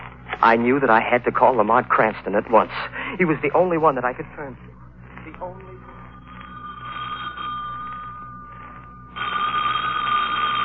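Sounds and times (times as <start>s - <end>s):
speech: 0.4s - 5.8s
old-fashioned telephone bell ringing: 5.7s - 10.6s.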